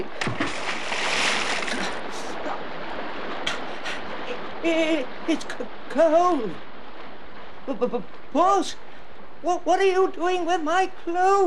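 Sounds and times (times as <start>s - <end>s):
churning, sloshing river water: 0.0s - 3.4s
splash of someone jumping into a river: 0.2s - 2.1s
speech: 4.6s - 6.7s, 7.7s - 11.4s.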